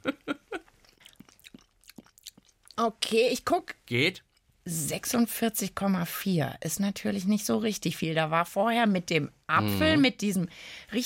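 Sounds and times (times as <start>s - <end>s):
person chewing toasted bread quickly: 0.7s - 2.8s
speech: 2.8s - 11.0s.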